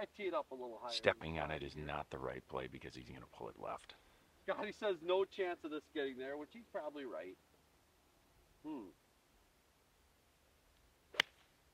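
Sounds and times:
speech: 0:00.2 - 0:07.5, 0:08.6 - 0:09.0
six iron swing chunking the ground: 0:11.1 - 0:11.5.

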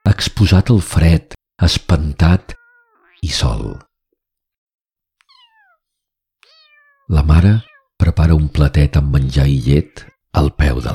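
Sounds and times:
speech: 0:00.1 - 0:02.6, 0:03.2 - 0:03.9, 0:07.1 - 0:10.9
kitten meowing weak and hoarse after a cold night up an acacia tree: 0:02.5 - 0:03.2, 0:05.2 - 0:08.0.

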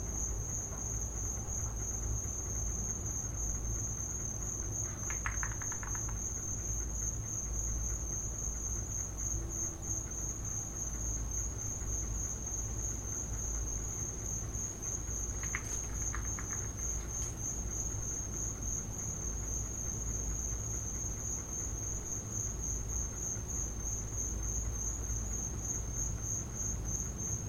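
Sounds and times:
cricket chorus in a back yard: 0:00.0 - 0:27.4
faint clicks: 0:04.9 - 0:06.2, 0:15.4 - 0:17.4.

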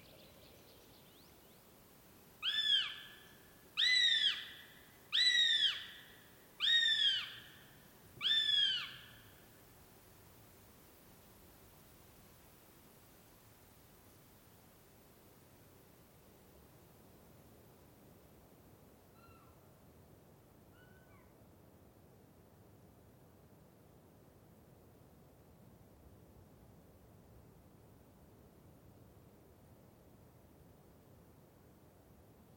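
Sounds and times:
bird calling with bright ringing whistles in Swedish and Norwegian wilderness: 0:02.4 - 0:09.4.

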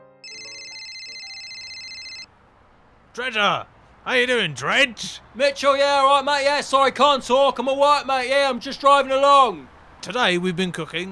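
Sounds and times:
telephone line ringing on outgoing call: 0:00.2 - 0:02.3
speech: 0:03.2 - 0:11.1.

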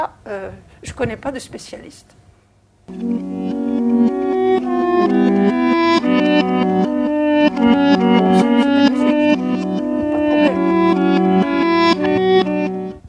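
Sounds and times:
speech: 0:00.0 - 0:02.2, 0:02.9 - 0:03.6
guitar music played in reverse: 0:02.9 - 0:13.0.

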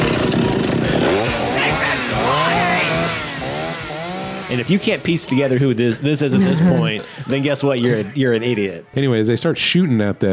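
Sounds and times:
chainsaw engine revving: 0:00.0 - 0:07.2
laughter: 0:04.5 - 0:08.9
speech: 0:04.5 - 0:10.3.

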